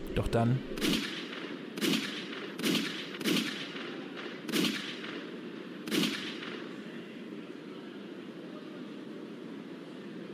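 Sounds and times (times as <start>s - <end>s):
speech: 0.2s - 1.1s
gunshots: 0.8s - 6.7s.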